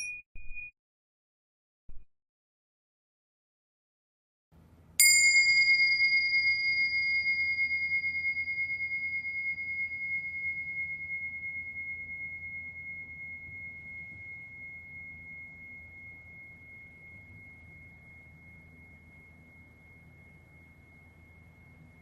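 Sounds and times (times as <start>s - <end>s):
mindfulness bell ringing: 5.0s - 22.0s.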